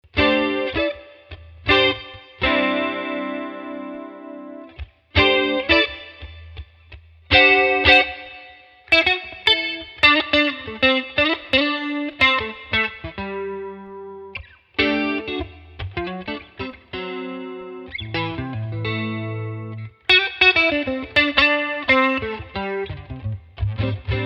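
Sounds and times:
guitar amplifier with chorus and spring reverb: 0.1 - 24.2.

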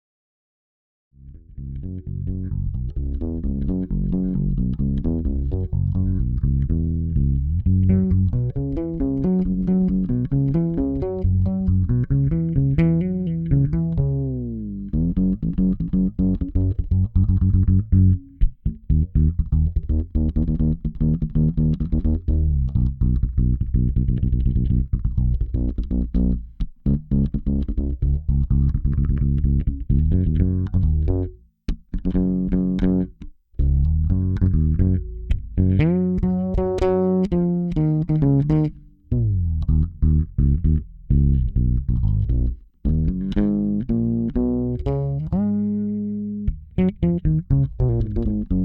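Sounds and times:
fretless synth bass: 1.2 - 48.6.

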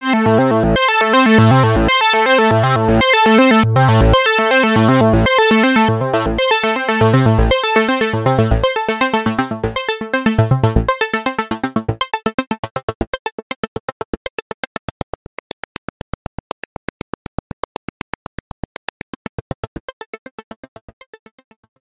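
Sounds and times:
GForce Oberheim OB X synthesizer envelope decay: 0.1 - 12.1.

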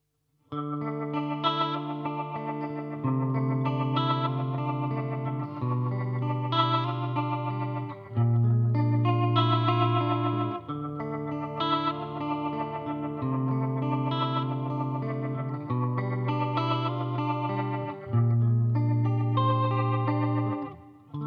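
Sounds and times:
electric guitar: 0.5 - 21.2.

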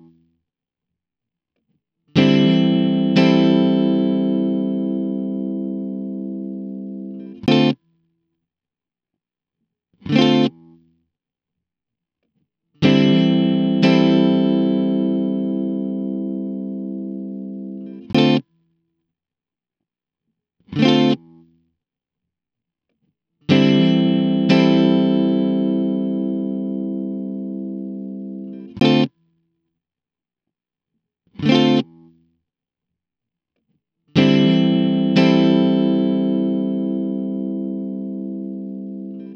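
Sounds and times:
cool rhythms without delay effect: 2.2 - 7.8, 12.9 - 18.5, 23.5 - 29.1, 31.4 - 32.1, 34.2 - 39.3.

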